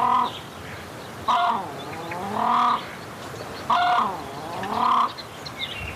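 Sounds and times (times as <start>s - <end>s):
Australasian crested grebe pūtekiteki calling: 0.0s - 0.4s, 1.2s - 3.0s, 3.6s - 5.9s.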